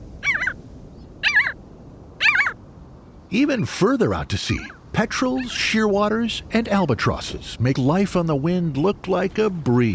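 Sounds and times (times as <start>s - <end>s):
jaeger giving harsh nasal wavering calls: 0.2s - 0.6s, 1.2s - 1.6s, 2.2s - 2.6s
speech: 3.3s - 9.9s.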